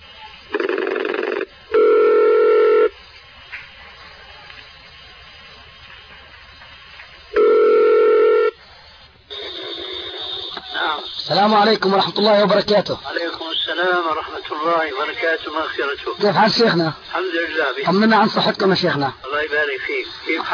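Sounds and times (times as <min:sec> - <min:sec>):
steady electronic telephone dialing tones: 0:00.6 - 0:02.9, 0:07.4 - 0:08.6
speech: 0:11.4 - 0:13.2, 0:13.8 - 0:20.5.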